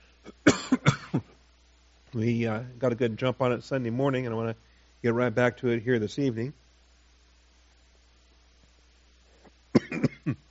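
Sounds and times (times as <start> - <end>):
low steady hum: 0.0 - 10.5
single sharp cough: 0.2 - 1.3, 9.7 - 10.4
speech: 2.2 - 6.6.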